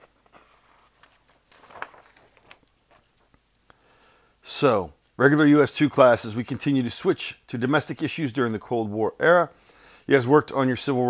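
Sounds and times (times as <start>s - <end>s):
paper sheets being shuffled: 0.0s - 3.4s
speech: 4.6s - 11.0s.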